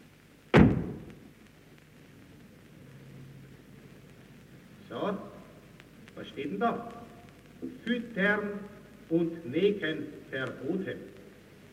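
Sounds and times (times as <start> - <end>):
door slamming shut: 0.5 - 1.1
speech: 6.3 - 7.0, 7.6 - 11.1.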